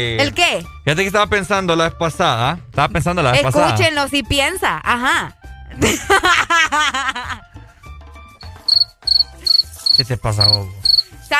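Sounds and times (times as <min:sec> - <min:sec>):
speech: 0:00.0 - 0:07.5, 0:10.0 - 0:11.3
laughter: 0:05.7 - 0:07.5
crickets chirping as a comic silence effect: 0:08.4 - 0:11.1.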